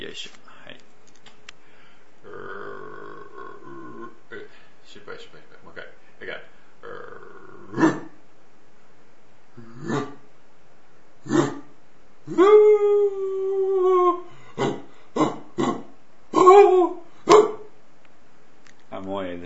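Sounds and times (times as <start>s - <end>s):
speech: 0.2s - 0.4s
person imitating dog howling with the throat: 2.2s - 4.2s, 6.8s - 8.1s, 9.6s - 10.2s, 11.3s - 11.7s, 12.3s - 17.6s
person imitating dog yelps with the throat: 2.2s - 4.5s, 6.8s - 8.2s, 9.6s - 10.3s, 11.2s - 17.7s.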